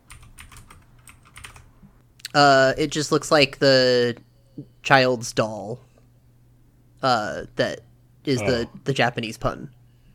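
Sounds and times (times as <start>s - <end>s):
typing on a computer keyboard: 0.0s - 1.7s
speech: 2.3s - 5.9s, 7.0s - 9.8s.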